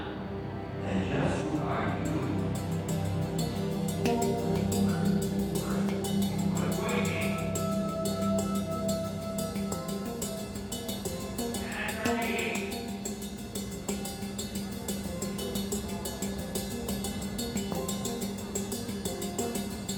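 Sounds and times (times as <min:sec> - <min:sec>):
handpan: 0:00.0 - 0:19.9
drums: 0:02.0 - 0:19.9.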